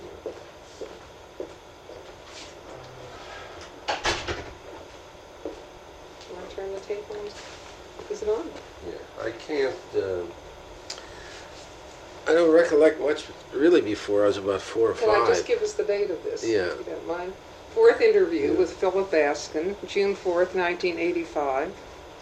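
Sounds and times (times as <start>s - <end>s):
door being closed: 3.9s - 4.6s
speech: 6.9s - 10.4s, 12.3s - 21.9s.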